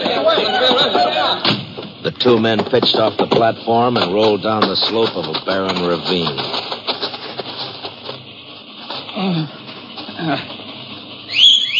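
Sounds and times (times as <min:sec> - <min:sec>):
laughter: 0:00.0 - 0:01.5
rustling, scraping movement noise: 0:00.0 - 0:11.7
speech: 0:02.2 - 0:06.6, 0:09.2 - 0:09.6, 0:10.2 - 0:10.6
whistle calling horses: 0:11.3 - 0:11.7.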